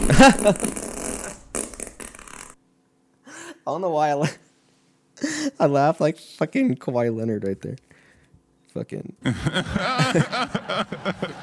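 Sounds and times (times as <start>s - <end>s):
laughter: 0.0s - 0.8s, 9.2s - 11.4s
long loud fart: 0.0s - 2.6s
speech: 0.1s - 0.8s, 3.7s - 4.4s, 5.2s - 8.0s, 8.7s - 11.4s.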